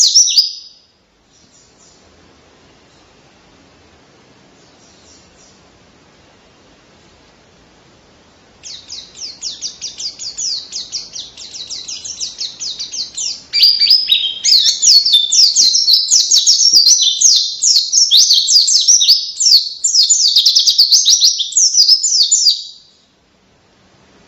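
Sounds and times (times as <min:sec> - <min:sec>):
caged white-eye singing vigorously: 0:08.5 - 0:21.1.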